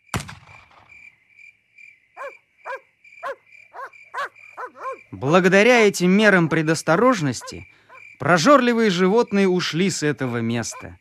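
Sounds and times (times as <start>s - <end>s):
continuous high insect trill: 0.0s - 11.0s
dog barking: 2.2s - 5.1s, 6.4s - 8.1s, 10.2s - 11.0s
speech: 5.1s - 11.0s.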